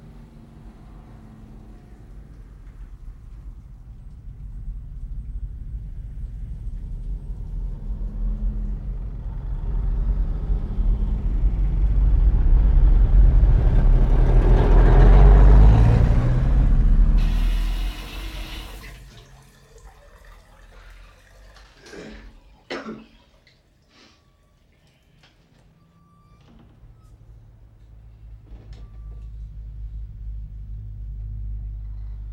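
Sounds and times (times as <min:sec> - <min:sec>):
heavy vehicle roaring past: 0:00.0 - 0:19.0, 0:27.4 - 0:32.3
road traffic rumbling outside: 0:00.0 - 0:19.0, 0:27.1 - 0:32.3.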